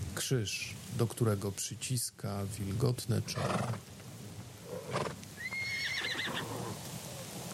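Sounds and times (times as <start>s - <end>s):
speech: 0.2s - 3.9s
horse letting out a loud shrill whinny: 3.4s - 3.8s, 4.7s - 6.8s.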